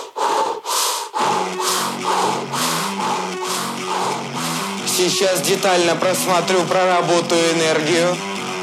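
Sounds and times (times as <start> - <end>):
quick heavy breaths in and out through the mouth: 0.0 - 5.0
speech: 5.0 - 8.3.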